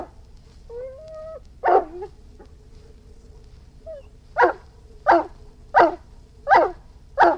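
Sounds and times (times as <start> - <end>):
steady low hum: 0.0 - 7.3
Irish Wolfhound whining: 0.7 - 2.2, 3.8 - 7.3
Irish Wolfhound barking deeply: 1.6 - 2.2, 3.4 - 7.3.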